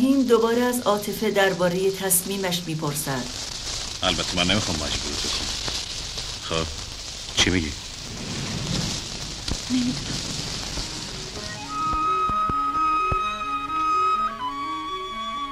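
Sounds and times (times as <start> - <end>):
speech: 0.0 - 5.6, 6.5 - 6.8, 7.4 - 7.8, 9.7 - 10.3
rain falling in a schoolyard: 0.0 - 15.4
slow melodic music line: 11.0 - 15.4.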